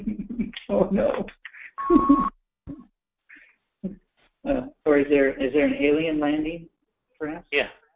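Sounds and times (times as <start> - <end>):
speech: 0.7 - 2.4, 5.0 - 7.7
electronic beeps over a phone line: 1.8 - 2.3.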